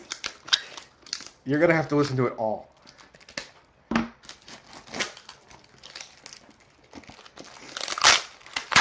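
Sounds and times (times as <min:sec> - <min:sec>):
packing tape torn open on a toner box: 0:00.0 - 0:02.2, 0:04.2 - 0:08.7
speech: 0:01.5 - 0:02.7.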